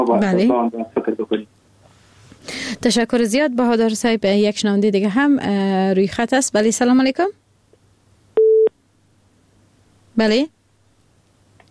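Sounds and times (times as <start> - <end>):
speech: 0.0 - 1.5, 2.4 - 7.4, 10.2 - 10.6
phone line busy tone after a dropped call: 8.4 - 8.7.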